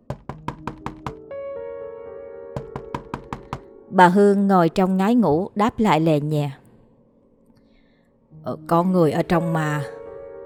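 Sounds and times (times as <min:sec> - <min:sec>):
knocking on a bathroom door: 0:00.0 - 0:01.3, 0:02.6 - 0:03.7
speech: 0:03.9 - 0:06.6, 0:08.4 - 0:10.0.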